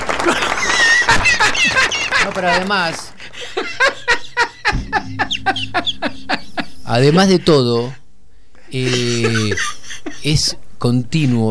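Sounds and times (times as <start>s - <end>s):
crowd applause: 0.0s - 3.4s
laughter: 0.1s - 8.0s, 8.7s - 10.4s
speech: 2.2s - 4.0s, 6.9s - 8.0s, 8.7s - 11.4s.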